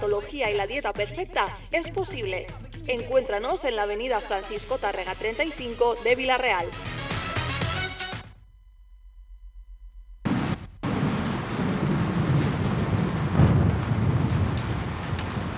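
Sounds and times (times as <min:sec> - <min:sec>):
speech: 0:00.1 - 0:07.0
low thunder rumbling: 0:09.5 - 0:15.5
steady dense rain hissing: 0:10.3 - 0:15.5.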